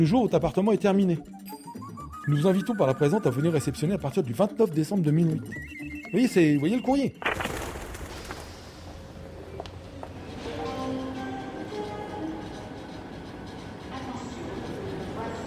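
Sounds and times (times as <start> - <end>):
speech: 0.0 - 1.6, 2.3 - 7.4
TGV train arriving at Gare de l'Est with heavy rail rumble: 8.7 - 15.4.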